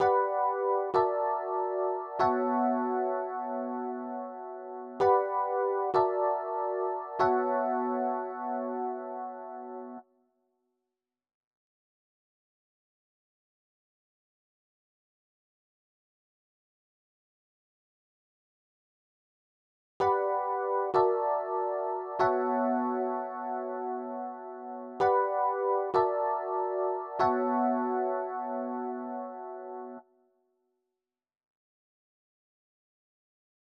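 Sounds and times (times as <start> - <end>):
Rhodes electric piano in B minor at 96 BPM: 0.0 - 10.0, 20.0 - 30.0.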